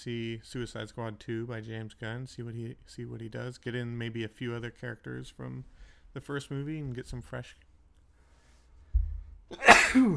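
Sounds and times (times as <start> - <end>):
speech: 0.0 - 7.6, 9.5 - 10.1
single loud sneeze: 9.5 - 10.1.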